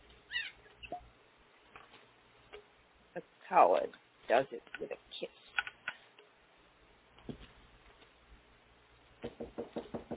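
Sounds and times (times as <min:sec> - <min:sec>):
hissy background: 0:00.0 - 0:09.2
speech: 0:03.2 - 0:05.4
sharp raps on a wooden door: 0:09.2 - 0:10.1.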